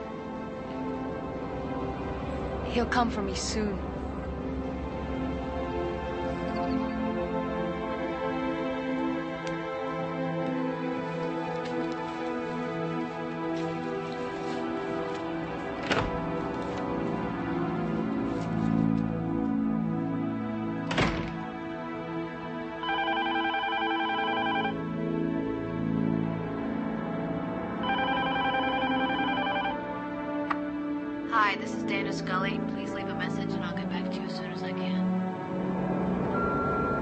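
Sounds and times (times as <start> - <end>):
low continuous music: 0.0 - 37.0
speech: 2.7 - 3.9
telephone ringing with electronic trill: 22.8 - 24.8, 27.8 - 29.8.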